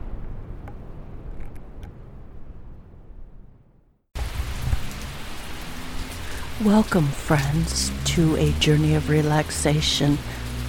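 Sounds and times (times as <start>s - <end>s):
low rumble: 0.0s - 10.6s
thunderstorm rain in Salem Massachusetts: 4.2s - 10.6s
speech: 6.6s - 10.4s.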